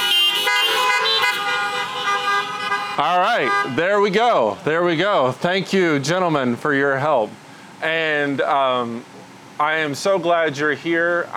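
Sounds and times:
many car horns honking at a church gathering: 0:00.0 - 0:04.6
speech: 0:03.0 - 0:11.3.

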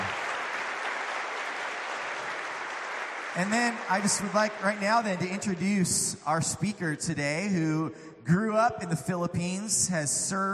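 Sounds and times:
church audience applause: 0:00.0 - 0:05.7
speech: 0:03.4 - 0:10.5.

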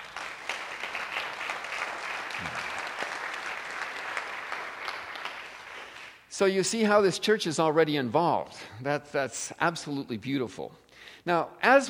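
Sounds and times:
audience applause: 0:00.0 - 0:06.2
speech: 0:06.4 - 0:11.8.

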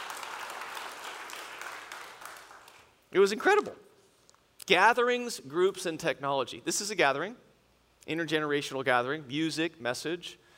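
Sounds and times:
crowd clapping: 0:00.0 - 0:03.0
speech: 0:03.1 - 0:03.9, 0:04.7 - 0:10.4.

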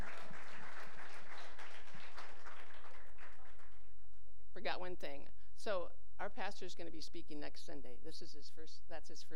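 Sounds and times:
crowd applauding for a guest speaker: 0:00.0 - 0:04.0
speech: 0:04.6 - 0:09.3.

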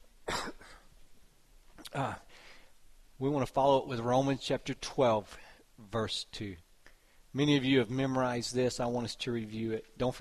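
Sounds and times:
person with a dry throat coughing into a microphone: 0:00.3 - 0:00.9
speech: 0:02.0 - 0:02.2, 0:03.2 - 0:06.6, 0:07.4 - 0:10.1.

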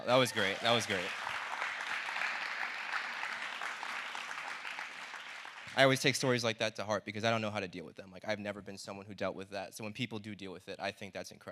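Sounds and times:
speech: 0:00.0 - 0:01.2, 0:05.8 - 0:11.5
audience applause: 0:00.0 - 0:06.1.

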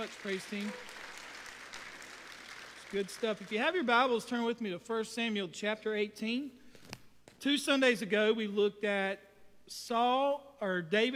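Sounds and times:
speech: 0:00.0 - 0:01.0, 0:02.9 - 0:06.6, 0:07.4 - 0:11.1
audience clapping in praise: 0:00.0 - 0:04.4.

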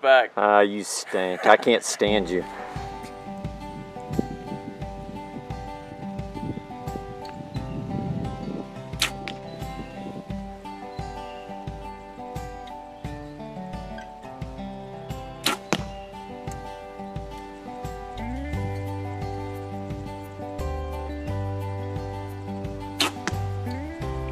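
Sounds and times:
speech: 0:00.0 - 0:02.6
steady music: 0:01.2 - 0:24.2
arrows shot from a bow during warm-up practice: 0:09.0 - 0:09.4, 0:15.4 - 0:16.0, 0:22.9 - 0:23.8.

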